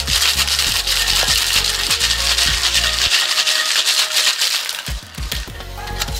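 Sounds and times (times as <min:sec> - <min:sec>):
ice rattling in a metal cocktail tin with blanc vermouth and lemon juice: 0:00.0 - 0:06.1.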